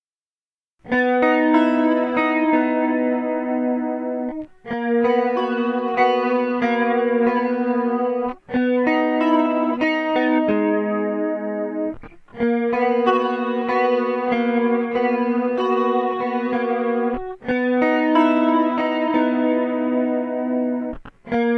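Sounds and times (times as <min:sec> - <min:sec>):
arpeggiated guitar: 0:00.8 - 0:21.5.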